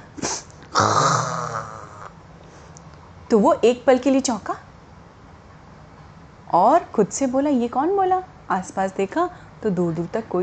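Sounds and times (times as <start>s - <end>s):
sharp sneeze: 0.2s - 1.6s
deep lion roar: 0.8s - 2.1s
speech: 3.3s - 4.6s, 6.5s - 10.4s.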